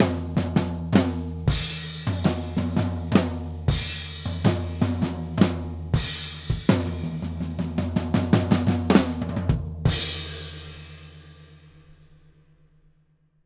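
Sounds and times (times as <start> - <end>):
blues drum ending: 0.0 - 10.8.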